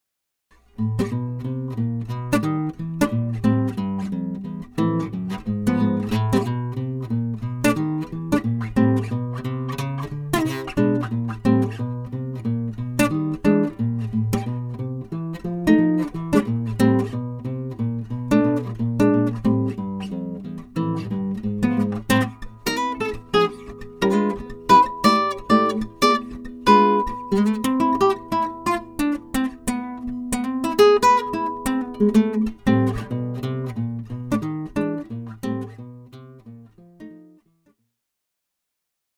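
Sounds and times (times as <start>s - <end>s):
jazz bass guitar: 0.8s - 36.1s.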